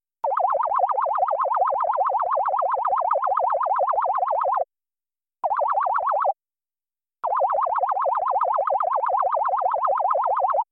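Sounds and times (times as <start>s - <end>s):
laser alarm: 0.2s - 4.7s, 5.4s - 6.4s, 7.2s - 10.7s.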